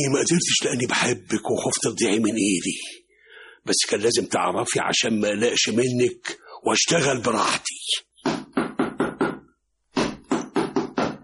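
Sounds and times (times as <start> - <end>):
speech: 0.0 - 3.0, 3.6 - 8.1
firm loud knocking on a door: 8.2 - 11.2.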